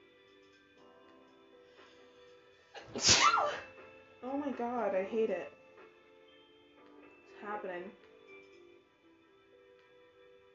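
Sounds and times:
person sneezing: 0:02.8 - 0:03.7
speech: 0:02.9 - 0:03.6, 0:04.2 - 0:05.6, 0:07.4 - 0:08.0.

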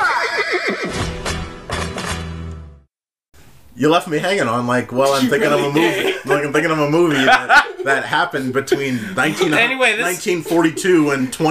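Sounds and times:
horse neighing: 0:00.0 - 0:01.0
speech: 0:03.8 - 0:11.4
laughter: 0:05.0 - 0:11.4.

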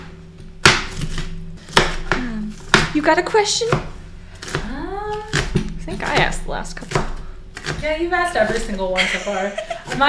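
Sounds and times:
knife chopping potatoes on a cutting board: 0:00.0 - 0:09.0, 0:09.6 - 0:10.0
speech: 0:03.0 - 0:03.9, 0:06.0 - 0:07.1, 0:07.8 - 0:10.0
laughter: 0:09.0 - 0:10.0.

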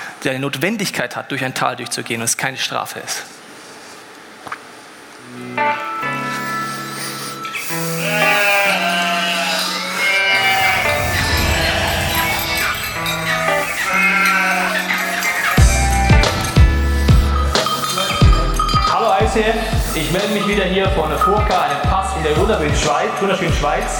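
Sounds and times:
speech: 0:00.2 - 0:03.4, 0:05.3 - 0:05.9, 0:19.4 - 0:23.9
several sheep bleating in a meadow: 0:05.4 - 0:18.2
low rumble: 0:10.8 - 0:13.8.

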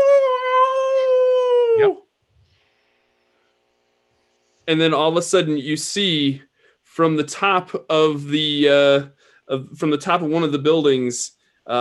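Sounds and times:
voice imitating a howl: 0:00.0 - 0:02.0
speech: 0:01.8 - 0:02.0, 0:04.7 - 0:11.7.

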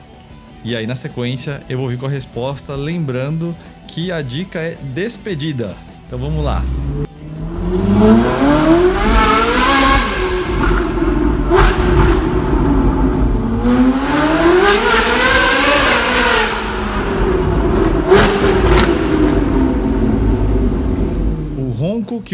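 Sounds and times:
speech: 0:00.6 - 0:07.1
Ferrari 458 Italia naturally aspirated V8 engine revving: 0:06.2 - 0:21.6.

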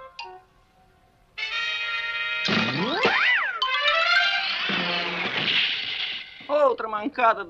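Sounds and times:
cartoon sound effect of a bowling ball rolling: 0:02.4 - 0:06.5
speech: 0:07.0 - 0:07.4.

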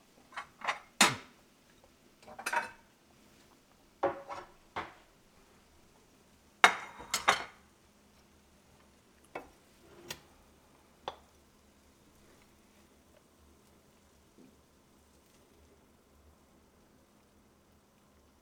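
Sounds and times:
dishes clinking and clattering while plating food into a bowl: 0:00.3 - 0:01.3, 0:02.2 - 0:02.8, 0:04.0 - 0:05.0, 0:06.6 - 0:07.6.

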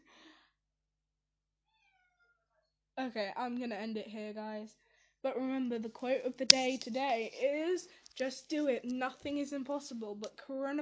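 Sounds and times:
pet cat meowing: 0:01.7 - 0:02.4
speech: 0:03.0 - 0:10.8.

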